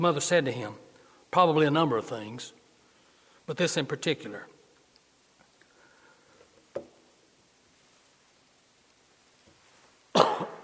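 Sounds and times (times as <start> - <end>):
speech: 0.0 - 2.6, 3.5 - 4.5
single loud cough: 10.1 - 10.6.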